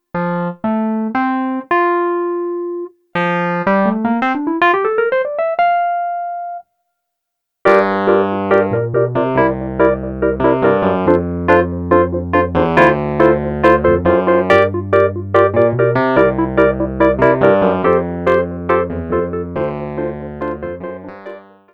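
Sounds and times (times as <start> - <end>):
wurly electric piano: 0.1 - 6.6, 7.7 - 21.7.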